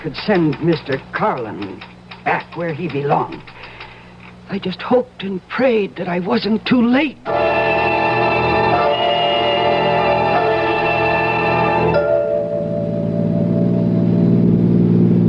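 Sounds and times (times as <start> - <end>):
speech: 0.0 - 3.6, 4.5 - 7.6
car engine roaring while driven fast around curves: 7.3 - 15.2.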